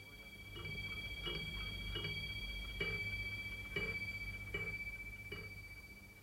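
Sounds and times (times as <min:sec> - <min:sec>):
desk clock ticking: 0:00.0 - 0:05.6.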